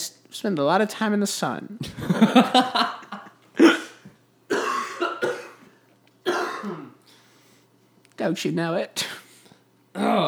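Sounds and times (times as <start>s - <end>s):
speech: 0.4s - 3.0s, 8.2s - 9.2s, 10.0s - 10.2s
laughter: 1.8s - 3.4s
person coughing hard: 3.6s - 5.7s, 6.3s - 7.0s.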